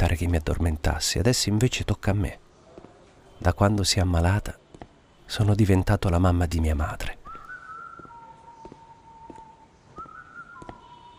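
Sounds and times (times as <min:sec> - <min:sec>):
speech: 0:00.0 - 0:02.4, 0:03.4 - 0:04.6, 0:05.3 - 0:07.2
soft rhythmic footsteps at walking pace: 0:02.7 - 0:03.4, 0:04.6 - 0:05.0, 0:07.3 - 0:11.1
person whistling a simple melody: 0:07.3 - 0:11.1.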